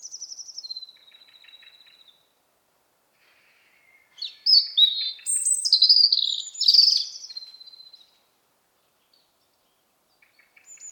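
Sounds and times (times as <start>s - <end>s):
European robin singing, Erithacus rubecula: 0.0s - 2.4s, 3.3s - 10.8s.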